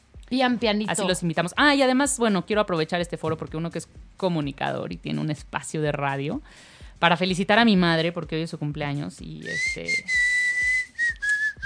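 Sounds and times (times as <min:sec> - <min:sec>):
soft low thumps at a regular beat: 0:00.1 - 0:09.4
speech: 0:00.3 - 0:10.3
steady whistled note: 0:09.4 - 0:11.6.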